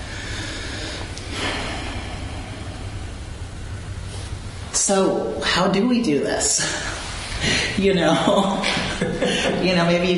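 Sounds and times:
deliberate noisy airy breath drawn by a speaker pausing mid-talk: 0.0s - 4.7s, 6.5s - 7.8s
constant low hum: 0.0s - 10.1s
speech: 4.8s - 7.0s, 7.8s - 10.1s.

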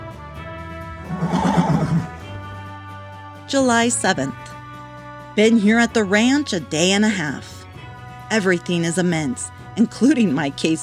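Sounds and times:
tethered horse neighing at a cowboys' campfire: 1.1s - 2.2s
speech: 3.5s - 4.6s, 5.4s - 7.6s, 8.3s - 10.8s.

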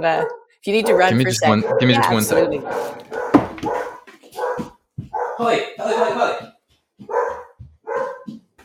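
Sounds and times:
speech: 0.0s - 3.7s, 5.4s - 7.1s
dog barking: 0.0s - 6.2s, 7.0s - 8.4s
person calling out: 0.9s - 2.6s.

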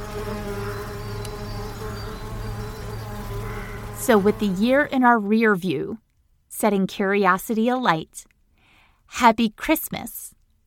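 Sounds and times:
bumblebee buzzing: 0.0s - 5.1s
speech: 4.0s - 8.3s, 9.1s - 10.3s.

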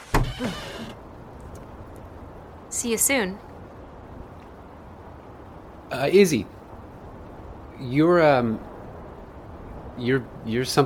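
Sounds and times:
car door unlatching and swinging open: 0.0s - 1.0s
speech: 0.4s - 0.8s, 2.8s - 3.5s, 6.0s - 6.6s, 7.8s - 8.7s, 10.0s - 10.8s.

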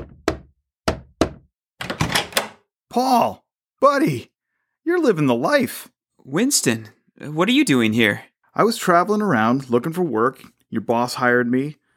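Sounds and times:
knocking on a wooden door: 0.0s - 1.5s
speech: 2.9s - 11.8s.

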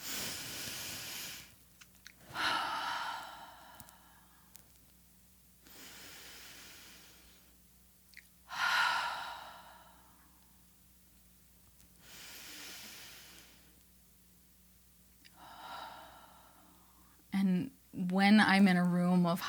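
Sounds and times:
deep breaths inhaling through nose and exhaling through mouth: 0.0s - 1.6s, 2.2s - 4.6s, 5.6s - 7.6s, 8.5s - 10.5s, 12.0s - 13.8s, 15.3s - 17.3s
speech: 18.2s - 19.4s.

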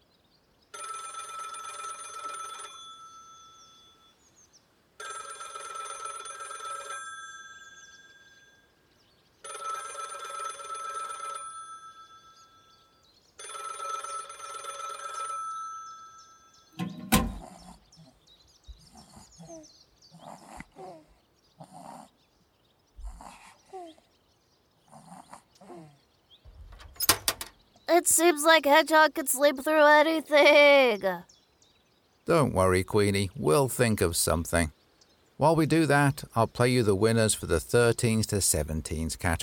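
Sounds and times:
telephone ringing inside a club: 0.7s - 4.2s, 5.0s - 8.7s, 9.4s - 17.4s
speech: 27.9s - 31.3s, 32.3s - 34.8s, 35.4s - 39.4s.

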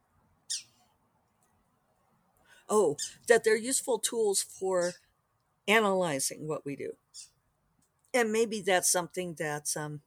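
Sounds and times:
pet bird raspy squawk: 0.5s - 0.8s
speech: 2.7s - 5.0s, 5.6s - 7.3s, 8.1s - 10.0s.

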